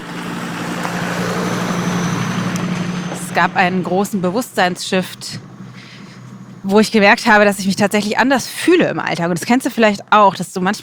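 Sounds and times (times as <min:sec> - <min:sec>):
car driving past: 0:00.0 - 0:07.0
speech: 0:03.4 - 0:05.5, 0:06.6 - 0:10.8.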